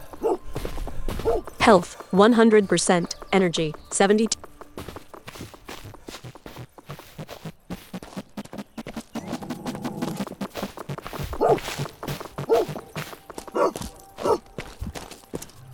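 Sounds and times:
footsteps in a video game: 0.0s - 15.7s
aggressive dog barking in a video game set in 15th-century Silesia: 0.2s - 0.4s, 1.2s - 1.5s, 11.4s - 11.7s, 12.4s - 12.8s, 13.5s - 14.4s
speech: 1.2s - 4.4s.

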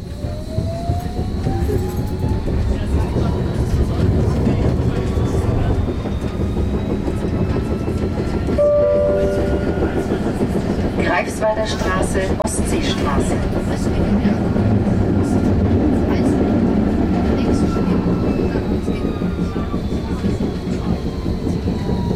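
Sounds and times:
tram running on rails: 0.0s - 22.1s
brief clear tone: 8.6s - 10.1s
speech: 11.5s - 14.5s.

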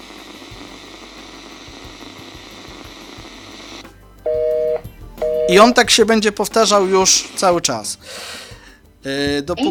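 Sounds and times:
car radio static hiss: 0.0s - 3.9s
two-pitch electronic tone: 4.3s - 5.8s
speech: 5.5s - 8.4s, 9.0s - 9.7s.

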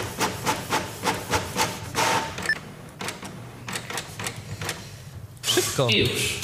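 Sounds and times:
inkjet printer starting to print: 0.0s - 5.0s
speech: 5.6s - 6.4s.

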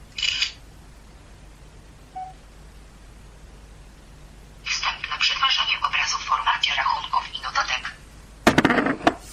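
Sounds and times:
quiet hiss: 0.0s - 9.3s
synthetic camera shutter click: 0.2s - 0.6s
faint electronic beep: 2.1s - 2.4s.

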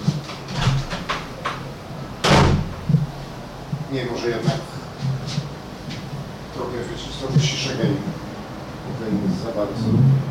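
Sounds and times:
cupboard door closing with a solid thump: 0.4s - 3.3s
speech: 3.9s - 4.7s, 6.8s - 8.2s, 8.9s - 10.2s.

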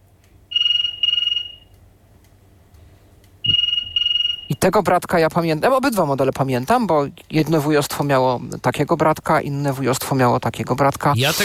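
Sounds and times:
old RWT Aster 7 wall-mounted telephone ringing: 0.5s - 1.7s, 3.5s - 4.6s
speech: 4.6s - 11.4s.

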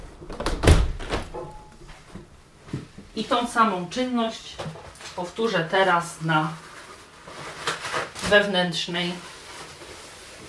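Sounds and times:
window closing after cleaning: 0.2s - 1.4s
speech: 3.2s - 6.7s, 8.3s - 9.3s.

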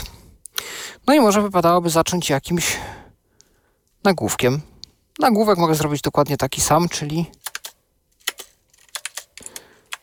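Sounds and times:
speech: 1.1s - 3.0s, 4.0s - 7.4s
typing on a computer keyboard: 7.4s - 10.0s.

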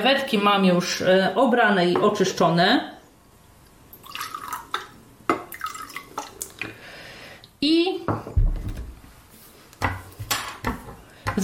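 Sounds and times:
speech: 0.0s - 3.0s, 7.6s - 8.4s
juice and water mixture pouring into a container: 3.9s - 6.7s
juice and water dripping: 3.9s - 6.8s.

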